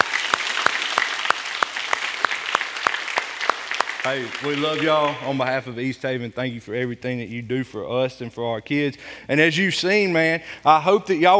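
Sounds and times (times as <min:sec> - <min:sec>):
crowd applauding: 0:00.0 - 0:05.5
speech: 0:04.0 - 0:11.3.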